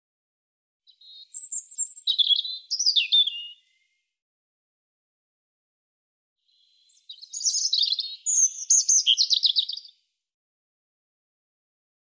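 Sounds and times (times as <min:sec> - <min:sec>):
European robin singing: 0:00.9 - 0:04.0, 0:06.5 - 0:10.0.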